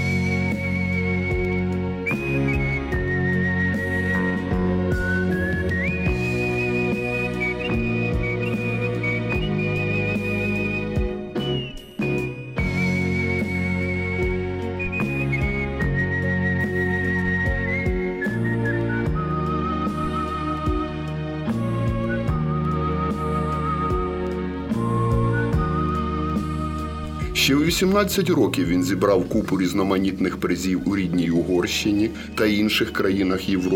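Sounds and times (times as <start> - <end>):
full instrumental accompaniment: 0.0 - 33.7
person whistling a virtuosic melody: 0.0 - 33.7
speech: 27.4 - 33.7.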